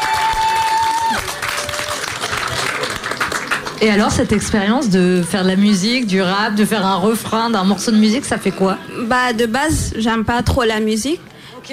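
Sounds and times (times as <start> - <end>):
audience applause: 0.0 - 4.2
speech: 3.8 - 11.7.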